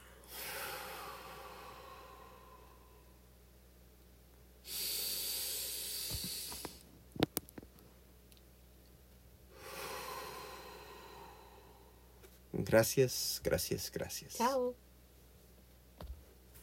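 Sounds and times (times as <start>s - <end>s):
long loud airy exhale: 0.0s - 3.1s, 4.6s - 6.8s, 9.5s - 12.2s
speech: 12.6s - 14.8s.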